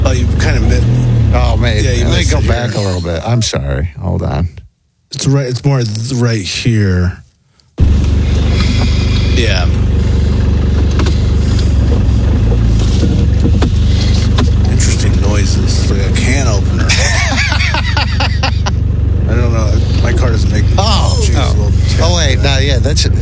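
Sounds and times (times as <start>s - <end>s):
steady low engine rumble of a parked car: 0.0s - 4.7s, 7.8s - 23.2s
speech: 1.6s - 7.2s, 9.4s - 9.9s, 22.8s - 23.2s
rustles of someone getting into a parked car: 7.2s - 15.6s
sharp clunks of someone getting into a parked car: 10.7s - 14.7s
laughter: 16.6s - 18.8s.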